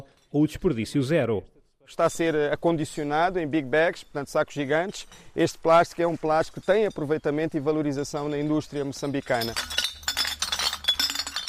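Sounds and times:
speech: 0.0 - 9.8
glass bottles clinking and knocking together: 4.0 - 11.4.

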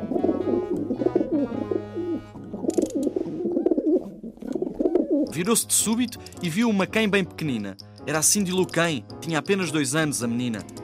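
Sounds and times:
pigeon cooing: 0.0 - 5.3
speech: 5.4 - 10.8.

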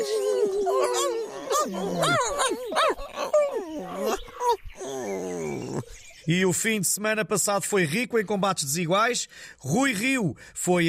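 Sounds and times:
several small dogs yapping and whining: 0.0 - 4.6
speech: 1.6 - 3.0, 6.3 - 10.8.

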